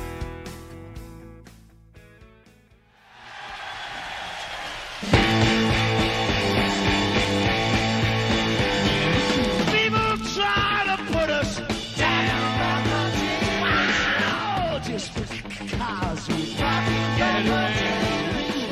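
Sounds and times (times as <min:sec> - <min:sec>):
live rock music: 0:00.0 - 0:02.8, 0:04.9 - 0:18.7
person yelling and screaming over a rock band: 0:13.4 - 0:14.8.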